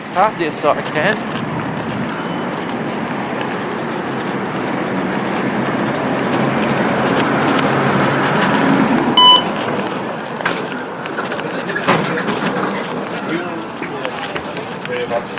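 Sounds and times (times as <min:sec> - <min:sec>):
F-line streetcar built in 1946 rumbling and rattling in downtown San Francisco: 0:00.0 - 0:15.3
speech: 0:00.2 - 0:01.4
short electronic beep: 0:09.2 - 0:09.6.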